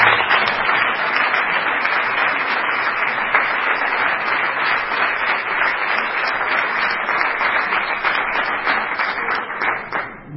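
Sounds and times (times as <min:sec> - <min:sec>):
audience applause: 0:00.0 - 0:10.2.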